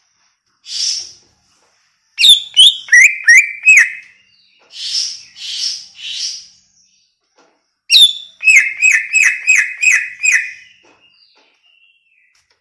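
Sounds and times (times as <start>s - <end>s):
greater green leafbird singing down-slurred whistled notes: 2.2s - 6.6s, 7.9s - 12.4s.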